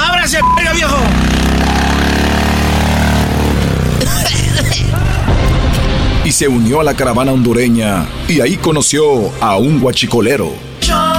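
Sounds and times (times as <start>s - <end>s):
motorcycle engine roaring through a tunnel laid with rails: 0.0s - 10.8s
speech: 6.4s - 11.1s.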